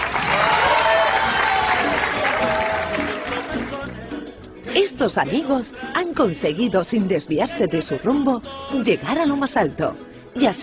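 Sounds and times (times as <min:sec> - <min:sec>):
scattered cheers and shouts from crowd: 0:00.0 - 0:03.6
large crowd applauding: 0:00.0 - 0:04.0
speech: 0:05.0 - 0:10.6.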